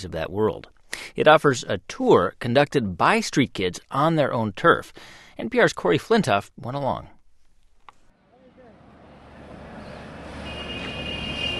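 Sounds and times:
speech: 0.0s - 7.2s
low rumble of traffic around a railway station: 8.1s - 11.5s.

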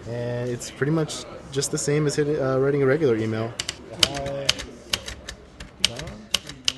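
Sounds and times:
speech: 0.0s - 4.3s
old manual typewriter keys clacking: 3.6s - 6.7s.

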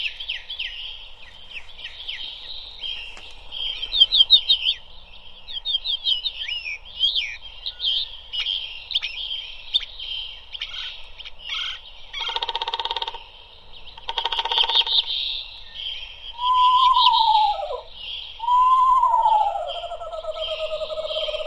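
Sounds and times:
chorus of woodland songbirds chirping and trilling: 0.0s - 21.4s
rapid woodpecker knocking: 12.2s - 13.2s, 14.0s - 15.1s.

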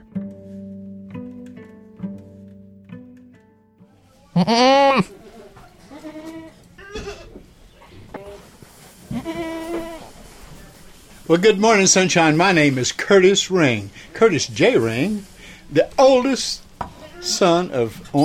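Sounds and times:
goats bleating at a goat auction in North Carolina: 4.3s - 7.4s, 9.1s - 10.2s, 16.0s - 18.2s
speech: 4.4s - 5.2s, 11.3s - 16.6s, 17.2s - 18.2s.

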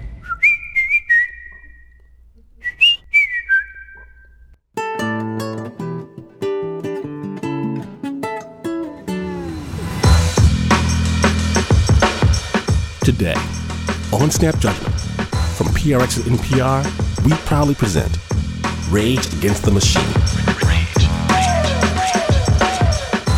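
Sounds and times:
person whistling a bouncy little tune: 0.2s - 1.9s, 2.6s - 4.5s
instrumental music: 4.8s - 14.1s, 20.1s - 23.3s
speech: 13.1s - 14.9s, 15.8s - 18.2s, 18.9s - 20.7s.

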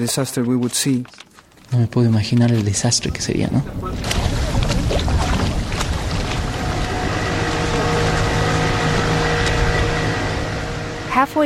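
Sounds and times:
speech: 0.0s - 5.3s, 11.2s - 11.4s
voices: 0.0s - 11.4s
faint wind noise: 2.2s - 11.4s
motorboat engines on a lagoon: 2.7s - 11.4s
water rushing on open water: 2.7s - 11.4s.

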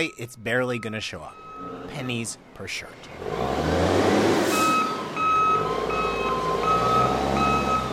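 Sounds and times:
port container handler reversing beeps in Colombia: 0.0s - 2.2s, 4.5s - 7.9s
speech: 0.0s - 3.9s.

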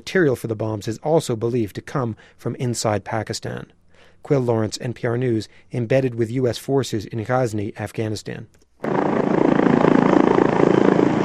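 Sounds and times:
speech: 0.0s - 9.4s
military helicopter rotors thudding while taking off: 8.8s - 11.2s.

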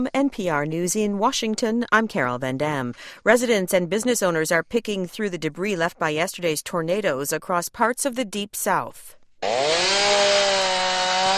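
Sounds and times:
speech: 0.0s - 10.7s
chainsaws clearing downed trees after tornadoes in Yazoo County, Mississippi: 9.4s - 11.3s.

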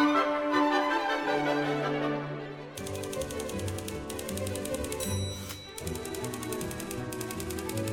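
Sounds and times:
lively orchestral tune with strings and brass by an American composer: 0.0s - 7.9s
rapid typewriter keystrokes: 2.8s - 7.9s
bright typewriter bell ding: 3.7s - 7.9s.

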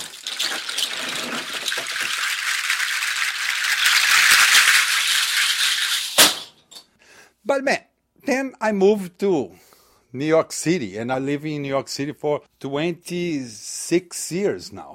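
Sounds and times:
bunch of seed pods rattling: 0.0s - 6.2s
speech: 7.5s - 14.9s.

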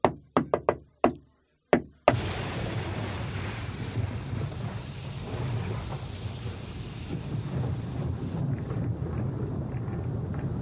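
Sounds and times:
sharp knocks on a hotel room door: 0.0s - 2.1s
steady rushing rumbling noise: 2.1s - 10.6s.

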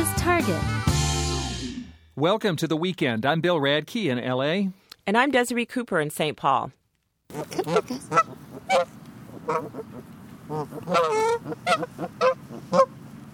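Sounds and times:
speech: 0.3s - 0.8s, 2.2s - 13.0s
flock of geese honking: 7.3s - 13.3s.

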